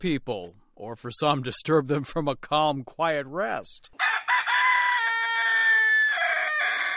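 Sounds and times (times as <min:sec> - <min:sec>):
speech: 0:00.0 - 0:04.3
rooster crowing: 0:04.0 - 0:06.9.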